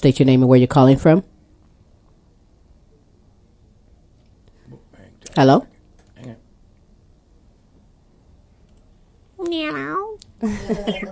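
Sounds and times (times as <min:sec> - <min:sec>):
speech: 0:00.0 - 0:01.3, 0:05.3 - 0:06.4, 0:09.4 - 0:11.0
person imitating a cat's meow: 0:09.4 - 0:10.2
laughter: 0:10.4 - 0:11.0.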